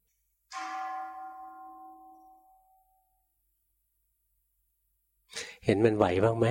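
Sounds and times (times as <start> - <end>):
single bell struck and ringing: 0.5 - 3.2
speech: 5.7 - 6.4.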